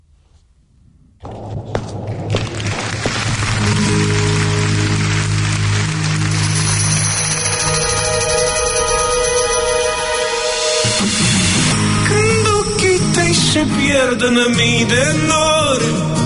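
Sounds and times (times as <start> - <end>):
steady continuous rain: 1.8 - 8.9
sustained musical tones: 3.3 - 14.5
speech: 13.9 - 16.2.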